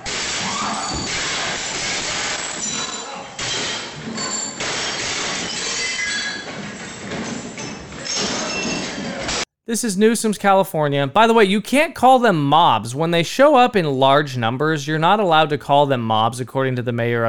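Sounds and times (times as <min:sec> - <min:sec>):
glass display cases smashed with hammers: 0:00.0 - 0:09.4
speech: 0:09.7 - 0:17.2.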